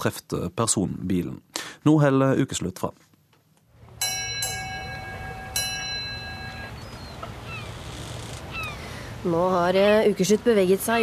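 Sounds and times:
speech: 0.0s - 3.1s, 9.2s - 11.0s
ringing bell-like chimes over the water: 4.0s - 6.9s
seagulls crying: 4.0s - 11.0s
waves lapping: 4.9s - 11.0s.

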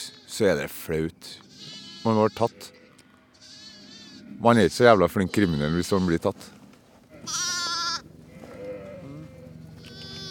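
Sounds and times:
sheep bleating: 0.0s - 0.7s, 1.4s - 4.3s, 4.9s - 6.4s, 7.0s - 10.3s
faint hum: 0.1s - 10.3s
speech: 0.4s - 2.8s, 4.3s - 6.6s
black lamb crying: 1.4s - 4.2s, 5.1s - 6.2s, 7.1s - 10.3s.

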